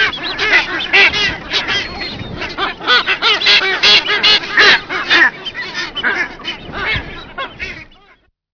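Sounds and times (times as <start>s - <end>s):
masked booby honking calls: 0.0s - 8.3s
seabird colony noise: 0.0s - 8.3s.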